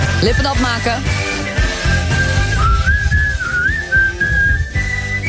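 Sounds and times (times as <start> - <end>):
speech: 0.2 - 1.2
person whistling a wavering melody: 1.0 - 5.2.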